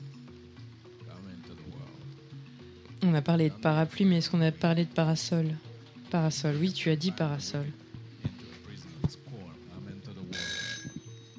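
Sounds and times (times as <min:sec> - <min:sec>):
speech: 0:03.0 - 0:07.8
alarm clock ringing: 0:10.3 - 0:11.3.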